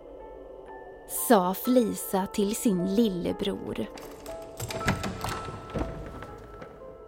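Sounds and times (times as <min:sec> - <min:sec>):
speech: 0:01.1 - 0:04.8
heavy door opening: 0:03.9 - 0:07.0
dull knocks and thumps: 0:04.0 - 0:07.0.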